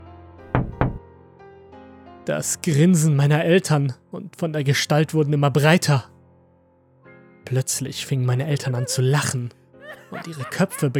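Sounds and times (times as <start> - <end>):
hard knocks on a window pane: 0.5 - 1.0
speech: 2.3 - 6.1, 7.5 - 10.9
laughter: 9.8 - 10.9.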